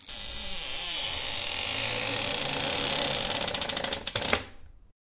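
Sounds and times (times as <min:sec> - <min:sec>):
door creaking: 0:00.1 - 0:04.9.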